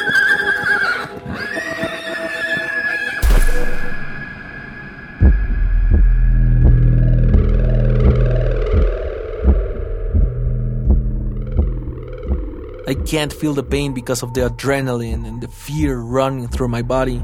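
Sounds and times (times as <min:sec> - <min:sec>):
horse whinnying: 0:00.0 - 0:03.2
sudden burst of noise: 0:03.2 - 0:05.8
heavy steady pounding: 0:05.2 - 0:17.2
speech: 0:13.1 - 0:17.2.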